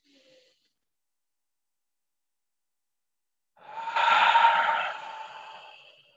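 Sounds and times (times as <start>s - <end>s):
long soft breath exhaled through the mouth during a deep breathing exercise: 3.6s - 6.1s.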